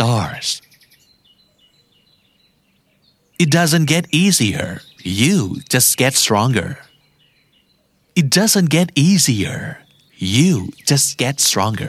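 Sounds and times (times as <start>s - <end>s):
speech: 0.0s - 0.6s, 3.4s - 6.9s, 8.2s - 11.8s
low steady ambient hum: 0.0s - 0.7s, 3.4s - 11.8s
birds chirping: 0.0s - 11.8s.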